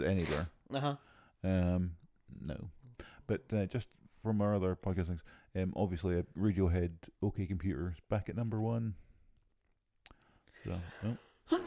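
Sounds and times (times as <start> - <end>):
person sneezing: 0.0 - 0.5
speech: 0.0 - 9.1, 10.6 - 11.6.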